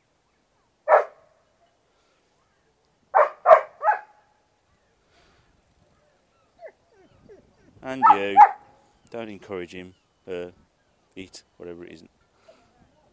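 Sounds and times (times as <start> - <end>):
dog barking: 0.9 - 1.3, 3.1 - 4.2, 8.0 - 8.7
speech: 7.8 - 10.6, 11.2 - 12.2.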